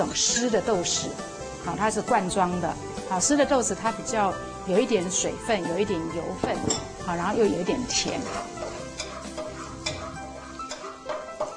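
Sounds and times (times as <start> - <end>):
spatula scraping and clinking against a pan: 0.0 - 0.7, 6.7 - 7.0, 8.0 - 11.5
speech: 0.0 - 8.6
garlic sizzling while being stir-fried in a pan: 0.0 - 11.5.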